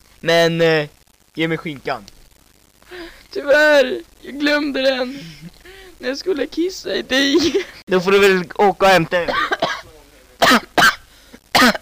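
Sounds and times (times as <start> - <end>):
speech: 0.2 - 2.1, 3.3 - 9.6
person coughing: 9.3 - 11.7.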